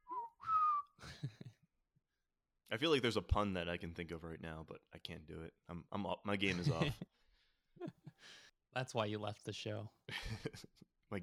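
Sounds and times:
person whistling in imitation of a train whistle: 0.0s - 1.0s
speech: 2.7s - 11.2s.

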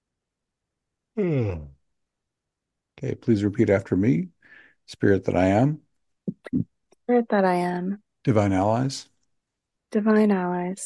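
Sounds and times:
speech: 1.2s - 1.7s, 3.0s - 5.8s, 6.5s - 9.1s, 9.9s - 10.8s
person yawning: 1.2s - 1.8s.

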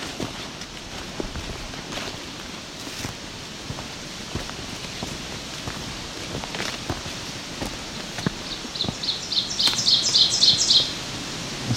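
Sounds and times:
patter of rain or dripping: 0.1s - 11.7s
ovenbird singing teacher-teacher-teacher song: 7.8s - 11.0s.

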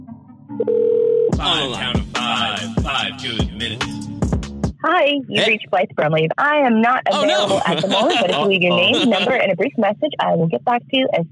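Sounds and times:
short steady mid-pitched telephone tone while placing a call: 0.5s - 1.4s
speech: 0.6s - 4.0s, 4.9s - 11.3s
laughter: 1.4s - 3.8s, 5.4s - 5.6s, 7.1s - 9.7s.

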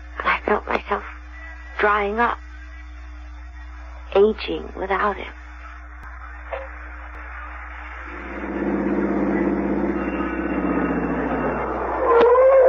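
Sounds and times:
speech: 0.5s - 1.1s, 1.8s - 2.4s, 4.1s - 5.4s
car engine idling and revving: 8.1s - 12.0s.

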